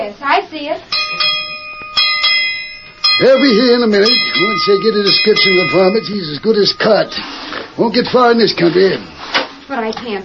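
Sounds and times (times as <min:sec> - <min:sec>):
speech: 0:00.1 - 0:01.5, 0:03.2 - 0:09.1, 0:09.7 - 0:10.2
ranch bell rung by pulling rope: 0:00.9 - 0:07.3.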